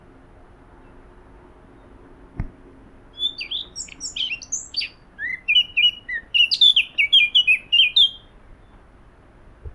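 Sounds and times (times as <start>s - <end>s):
Eurasian blackcap Sylvia atricapilla singing: 3.2s - 8.3s.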